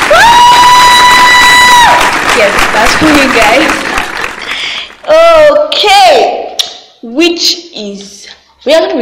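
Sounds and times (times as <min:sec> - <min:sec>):
crowd cheering and applause: 0:00.0 - 0:05.6
speech: 0:02.4 - 0:03.9, 0:05.1 - 0:06.3, 0:07.0 - 0:09.0.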